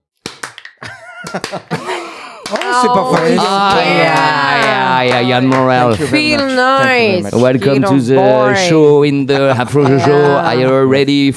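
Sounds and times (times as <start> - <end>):
host clapping hands in American-style welcome: 0.2 - 6.0
laughter: 0.8 - 8.7, 9.4 - 11.0
speech: 1.2 - 1.9, 2.5 - 11.3.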